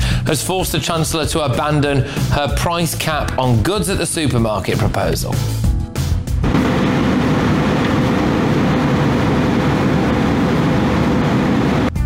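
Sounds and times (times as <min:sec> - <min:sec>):
speech: 0:00.3 - 0:05.6
Russian fighter jet engine roaring over international waters: 0:06.4 - 0:12.0.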